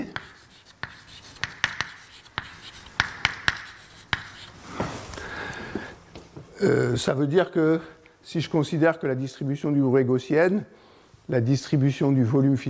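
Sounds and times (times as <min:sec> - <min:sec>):
writing on a board during a lecture: 0:00.0 - 0:04.6
low hiss: 0:00.0 - 0:12.6
speech: 0:06.6 - 0:12.6.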